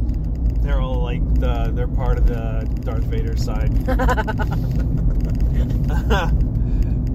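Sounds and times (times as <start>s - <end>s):
car cruising at highway speed, low road rumble: 0.0s - 7.1s
speech: 1.4s - 6.5s
person laughing: 3.9s - 6.4s.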